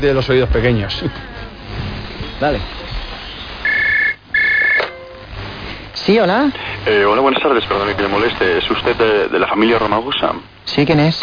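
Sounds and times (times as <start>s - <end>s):
speech: 0.0s - 1.4s, 2.4s - 2.8s, 6.1s - 11.2s
telephone ringing: 3.6s - 5.4s.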